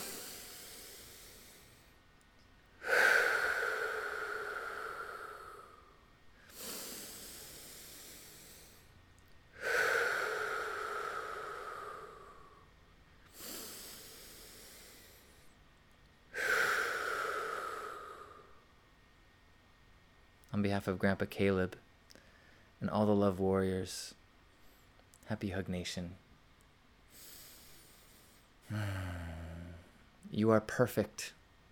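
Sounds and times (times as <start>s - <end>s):
slow deep breaths during a guided breathing exercise: 0.0s - 2.1s, 2.7s - 15.6s, 16.3s - 18.7s, 22.1s - 22.8s, 27.1s - 30.2s
speech: 20.6s - 21.8s, 22.9s - 24.2s, 25.3s - 26.2s, 30.4s - 31.4s.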